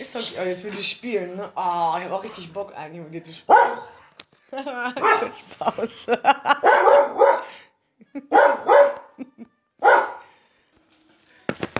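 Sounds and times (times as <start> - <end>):
speech: 0.0 - 6.6
dog barking: 3.5 - 4.0, 5.0 - 5.4, 6.6 - 7.6, 8.3 - 9.2, 9.8 - 10.3
person laughing: 4.5 - 6.8, 8.0 - 8.4, 9.0 - 9.6.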